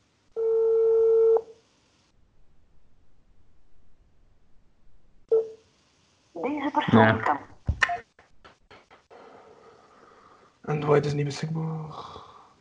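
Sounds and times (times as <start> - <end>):
telephone ringback tone: 0.4 - 1.4
faint noise: 1.4 - 12.6
speech: 6.7 - 7.4, 11.0 - 12.6.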